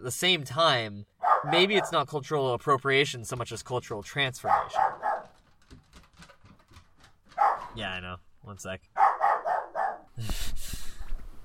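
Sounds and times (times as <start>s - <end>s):
speech: 0.0s - 5.0s, 7.8s - 9.0s, 10.2s - 10.5s
dog barking: 1.2s - 2.0s, 4.4s - 5.4s, 7.3s - 7.8s, 9.0s - 10.1s
scuffling: 6.8s - 7.8s.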